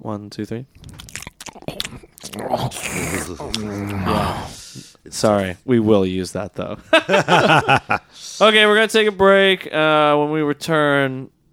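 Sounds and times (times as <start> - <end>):
speech: 0.0 - 1.0, 2.4 - 11.4
mouth sounds imitating slurping spaghetti: 0.7 - 5.1
laughter: 6.8 - 8.4.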